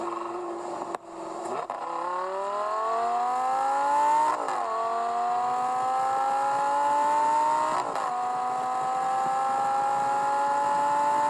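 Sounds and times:
car engine accelerating hard with gear changes: 0:00.0 - 0:11.2.

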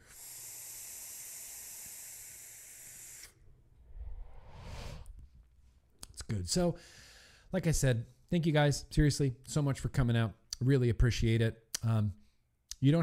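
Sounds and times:
vapor hissing from a vape tank: 0:00.0 - 0:03.4
breathy exhale puff of vapor: 0:00.0 - 0:05.2
speech: 0:06.4 - 0:12.2, 0:12.8 - 0:13.0.

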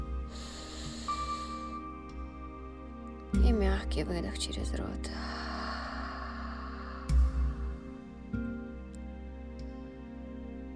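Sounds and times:
low steady hum: 0:00.0 - 0:10.7
deep inhale through the nose: 0:00.1 - 0:02.3, 0:05.1 - 0:08.3
speech: 0:03.3 - 0:05.5.

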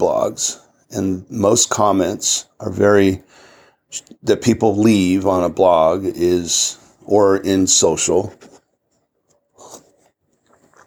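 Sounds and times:
speech: 0:00.0 - 0:08.5
person sipping hot coffee: 0:09.5 - 0:10.8.

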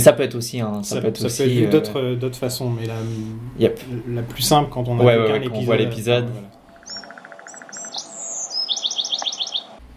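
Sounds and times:
speech: 0:00.0 - 0:06.6
bird chirps and whistles in a TV series opening theme: 0:06.8 - 0:09.8.

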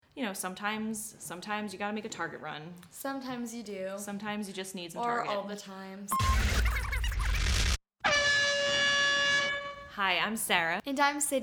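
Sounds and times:
speech: 0:00.2 - 0:06.6, 0:10.0 - 0:11.4
burst of dense noise: 0:06.2 - 0:07.8
air horn blast: 0:08.0 - 0:10.0.

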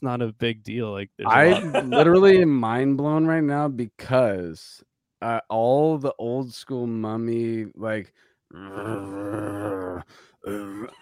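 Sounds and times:
speech: 0:00.0 - 0:11.0
laughter: 0:01.3 - 0:02.4
voice imitating a death metal growl: 0:08.5 - 0:11.0.

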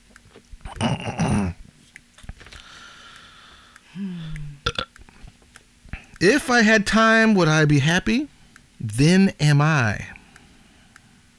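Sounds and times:
person belching after drinking coke: 0:00.7 - 0:01.6, 0:04.0 - 0:04.9
speech: 0:06.2 - 0:10.1.

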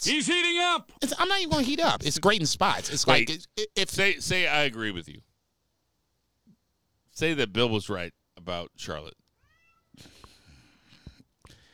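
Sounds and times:
speech: 0:00.0 - 0:05.3, 0:07.2 - 0:09.2
cat meowing: 0:09.4 - 0:10.0.

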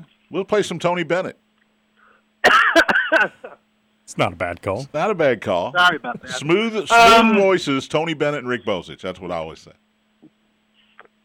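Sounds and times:
speech: 0:00.3 - 0:01.4, 0:03.2 - 0:09.8
person coughing in a harsh raspy fit: 0:02.4 - 0:03.6.

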